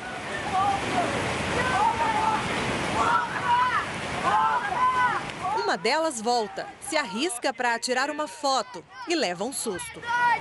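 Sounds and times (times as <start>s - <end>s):
rushing muddy floodwater of overflowing stream on Avenida Tereza Cristina: 0.0s - 10.3s
voices and shouts of children about ten to thirteen years old: 0.4s - 5.6s, 9.8s - 10.3s
speech: 5.7s - 10.3s.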